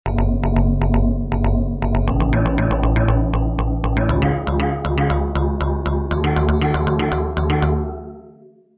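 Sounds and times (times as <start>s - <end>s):
Roland JV880 synthesizer: 0.1s - 8.6s.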